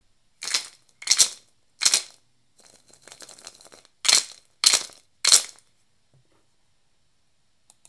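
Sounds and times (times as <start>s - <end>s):
hand-crafted zebra rattle shaking: 0.4s - 5.7s.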